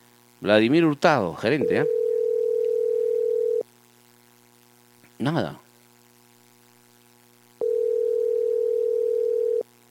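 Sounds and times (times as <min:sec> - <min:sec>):
speech: 0:00.4 - 0:02.0, 0:05.2 - 0:05.6
telephone busy signal: 0:01.6 - 0:03.6, 0:07.6 - 0:09.6.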